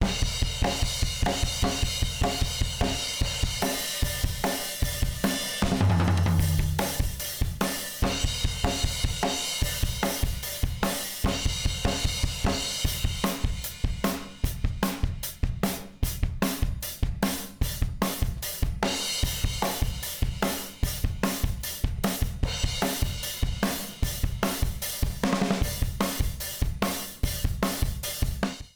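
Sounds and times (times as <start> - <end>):
punk drums: 0.0 - 28.7.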